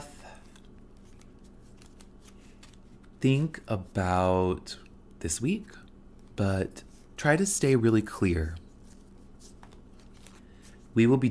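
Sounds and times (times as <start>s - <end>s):
deck of tarot cards being shuffled: 0.3s - 4.0s, 8.7s - 10.9s
speech: 3.2s - 5.8s, 6.4s - 8.6s, 11.0s - 11.3s.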